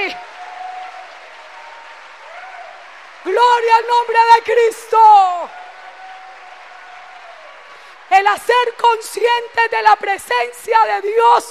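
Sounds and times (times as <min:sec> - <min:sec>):
crowd at a church service applauding: 0:00.0 - 0:10.6
speech: 0:03.3 - 0:05.6, 0:08.1 - 0:11.4.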